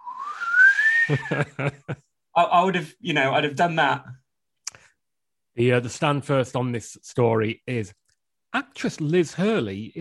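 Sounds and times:
person vocally imitating a whistle: 0:00.0 - 0:01.3
laughter: 0:01.1 - 0:02.1
speech: 0:01.1 - 0:04.2, 0:05.6 - 0:10.0.

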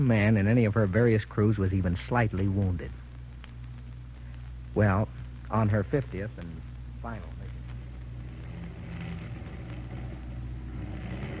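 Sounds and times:
speech: 0:00.0 - 0:03.0, 0:04.8 - 0:07.4
damaged aircraft engine with one motor out droning: 0:05.9 - 0:11.3.

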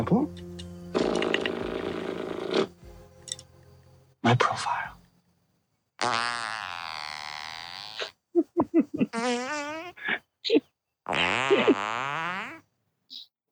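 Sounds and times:
speech: 0:00.0 - 0:00.5, 0:04.3 - 0:04.8
fart sounds in a played clip: 0:00.9 - 0:02.9, 0:06.0 - 0:08.2, 0:09.0 - 0:10.2, 0:11.1 - 0:12.6.

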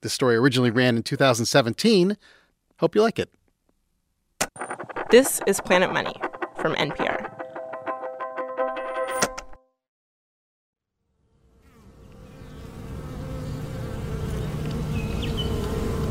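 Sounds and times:
speech: 0:00.0 - 0:03.4, 0:04.5 - 0:07.4
honeybees buzzing in a dense swarm-like drone: 0:11.1 - 0:16.0.

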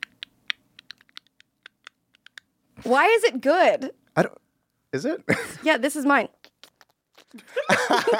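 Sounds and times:
typing on a computer keyboard with jam stuck under the keys: 0:00.0 - 0:02.4
speech: 0:02.8 - 0:06.4, 0:07.3 - 0:08.1
laughter: 0:07.4 - 0:08.1.

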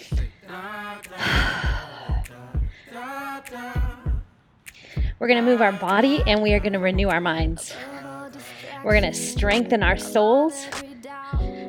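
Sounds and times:
steady low beat: 0:00.0 - 0:00.4, 0:01.4 - 0:02.8, 0:03.8 - 0:04.3, 0:05.0 - 0:05.2, 0:06.2 - 0:07.6, 0:08.9 - 0:10.1, 0:11.4 - 0:11.6
deep audible breath: 0:01.1 - 0:03.0, 0:04.7 - 0:05.2
speech: 0:05.2 - 0:07.9, 0:08.8 - 0:10.8.

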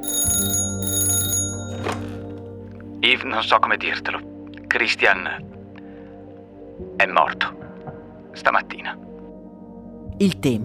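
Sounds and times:
telephone ringing in a designer's studio: 0:00.0 - 0:02.5
speech: 0:03.1 - 0:05.6, 0:07.0 - 0:07.6, 0:08.4 - 0:09.0, 0:10.2 - 0:10.6.

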